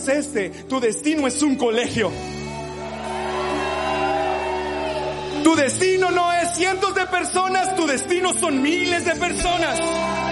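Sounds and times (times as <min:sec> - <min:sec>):
speech: 0:00.0 - 0:02.4, 0:05.5 - 0:10.3
large crowd shouting and whooping: 0:02.1 - 0:10.3.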